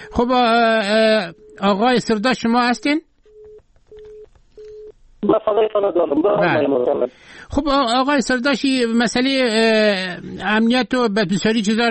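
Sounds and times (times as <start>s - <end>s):
speech: 0.2s - 3.1s, 5.2s - 11.8s
telephone line tone after a dropped call: 3.3s - 4.9s.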